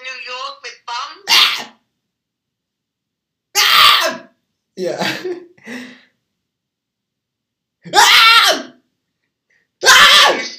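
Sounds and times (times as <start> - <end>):
person screaming: 1.2 - 1.8, 3.5 - 4.3, 7.9 - 8.8, 9.8 - 10.5
speech: 4.8 - 6.0.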